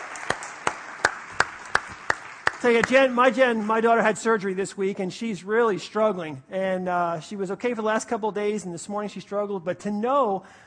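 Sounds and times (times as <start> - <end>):
low continuous wash of scattered applause: 0.0 - 4.1
crowd clapping hands in a steady rhythm: 0.0 - 4.4
speech: 2.6 - 10.6.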